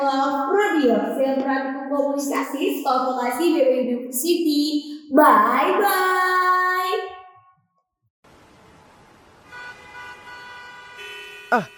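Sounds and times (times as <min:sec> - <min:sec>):
speech: 0:00.0 - 0:07.1, 0:11.5 - 0:11.7
dense traffic hum: 0:08.3 - 0:11.7
car horns honking in a traffic jam: 0:09.4 - 0:11.7.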